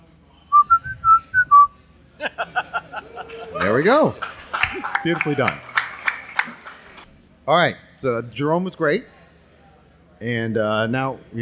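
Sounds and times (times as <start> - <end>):
person whistling a short bright tune: 0.5 - 1.7
laughter: 2.1 - 7.0
speech: 2.4 - 5.7, 7.5 - 9.1, 10.2 - 11.4.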